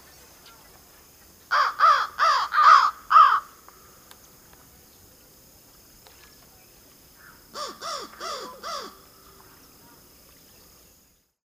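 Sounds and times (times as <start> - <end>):
bird giving harsh hoarse caws in Northern Illinois: 1.5 - 3.9, 7.2 - 9.4.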